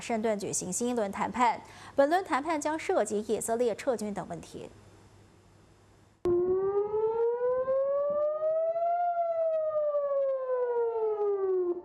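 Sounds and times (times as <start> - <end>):
speech: 0.0 - 4.8
air raid siren wailing in communities in northern Israel: 6.3 - 11.8.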